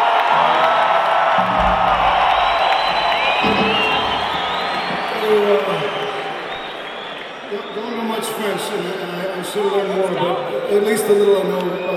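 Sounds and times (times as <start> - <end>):
live audience cheering and whooping: 0.0 - 9.9
shrill whistles: 1.9 - 8.4
speech: 8.5 - 11.9.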